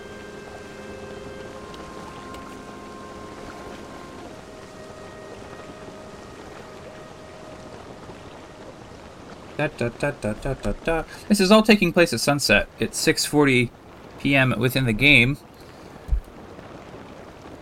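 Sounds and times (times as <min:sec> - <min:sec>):
faint sustained tones in a video game: 0:00.0 - 0:12.9
wind gusting a boat across water in a video game: 0:00.0 - 0:17.6
speech: 0:09.6 - 0:15.5.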